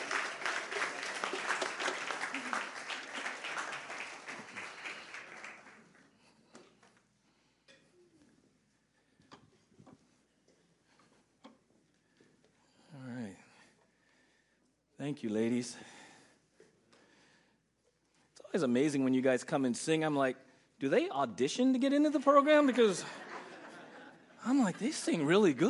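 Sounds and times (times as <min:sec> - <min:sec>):
audience applause for a group of singers: 0:00.0 - 0:06.1
speech: 0:15.0 - 0:15.9, 0:18.6 - 0:23.2, 0:24.4 - 0:25.6
laughter: 0:22.5 - 0:25.6.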